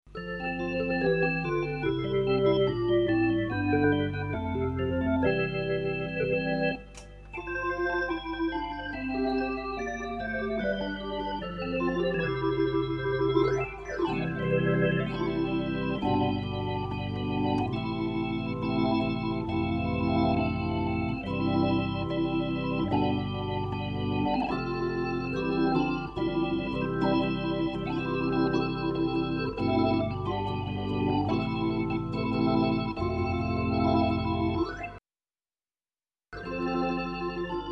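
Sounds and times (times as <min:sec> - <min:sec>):
Hammond T522 tonewheel organ with mechanical scanner vibrato playing an anthem: 0:00.1 - 0:35.0, 0:36.4 - 0:37.7.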